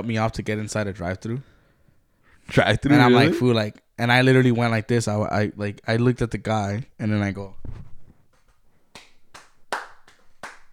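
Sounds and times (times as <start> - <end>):
speech: 0.0 - 1.5, 2.5 - 7.9
hands clapping: 8.4 - 10.7.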